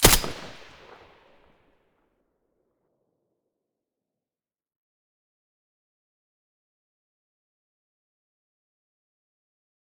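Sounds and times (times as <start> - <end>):
M4A1 rifle with silencer firing: 0.0 - 1.3.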